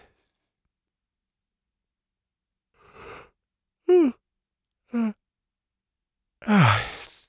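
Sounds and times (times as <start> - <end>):
man yawning: 3.9 - 4.2, 5.0 - 5.2, 6.4 - 7.2.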